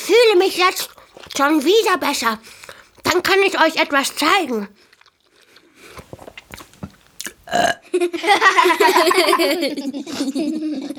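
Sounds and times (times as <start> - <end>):
speech: 0.3 - 4.9, 7.5 - 10.9
short clicks and smacking mouth noises: 0.5 - 1.7, 2.4 - 3.3, 4.8 - 7.6
long loud croaky burp: 7.5 - 7.9
laughter: 7.9 - 10.9.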